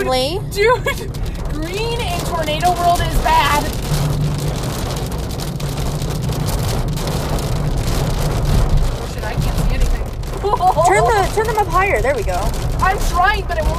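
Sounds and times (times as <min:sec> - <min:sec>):
speech: 0:00.0 - 0:04.0, 0:10.4 - 0:13.7
road rumble: 0:00.0 - 0:13.7
steady rain drumming on a moving car: 0:00.0 - 0:13.7.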